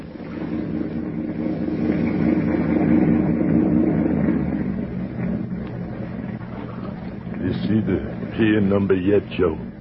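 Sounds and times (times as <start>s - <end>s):
motorboat engine purring on New York's East River: 0.0s - 9.7s
speech: 7.8s - 9.7s.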